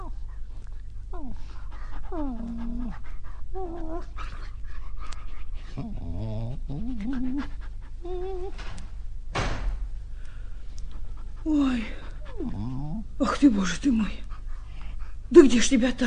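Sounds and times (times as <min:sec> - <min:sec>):
injured dog whimpering and whining at a door: 0:00.0 - 0:00.2, 0:01.1 - 0:04.6, 0:05.7 - 0:08.8, 0:12.2 - 0:13.1
steady low hum: 0:00.0 - 0:16.0
exhausted dog panting: 0:00.1 - 0:08.5, 0:10.8 - 0:15.7
speech: 0:02.1 - 0:04.4, 0:13.2 - 0:14.3, 0:15.3 - 0:16.0.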